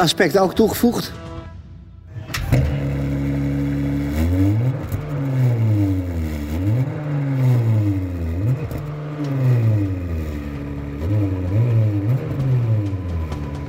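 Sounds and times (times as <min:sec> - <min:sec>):
speech: 0:00.0 - 0:01.3
modern car engine revving in neutral: 0:00.0 - 0:13.6.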